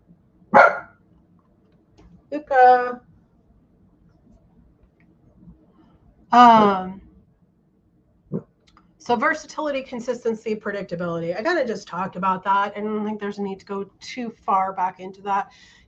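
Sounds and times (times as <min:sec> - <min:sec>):
hum: 0:00.0 - 0:15.8
dog barking: 0:00.5 - 0:00.9
speech: 0:06.3 - 0:07.0, 0:09.1 - 0:15.8.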